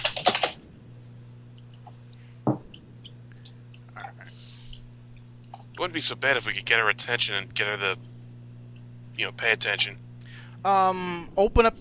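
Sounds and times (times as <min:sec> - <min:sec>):
computer keyboard typing by a woman: 0:00.0 - 0:00.6
steady low electrical hum: 0:00.0 - 0:11.7
speech: 0:05.8 - 0:08.1, 0:09.2 - 0:10.0, 0:10.6 - 0:11.7.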